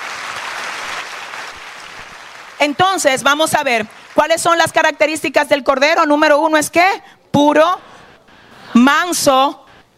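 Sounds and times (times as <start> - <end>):
audience applause at a religious sermon: 0.0 - 2.6
speech: 2.6 - 7.9, 8.8 - 9.6.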